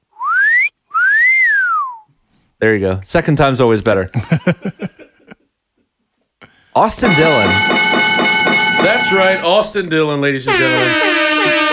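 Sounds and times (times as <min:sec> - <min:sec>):
person whistling two loud notes: 0:00.1 - 0:02.1
speech: 0:02.6 - 0:04.9, 0:06.8 - 0:08.0, 0:08.8 - 0:11.2
laughter: 0:04.2 - 0:05.5, 0:10.5 - 0:11.7.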